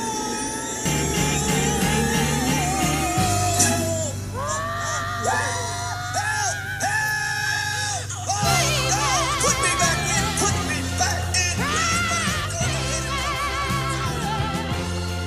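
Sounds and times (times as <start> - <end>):
raw belted vocal straining into scream-like wails: 0.0 - 15.2
rock band with steady bass line and dense backing: 0.9 - 4.5, 8.4 - 15.2.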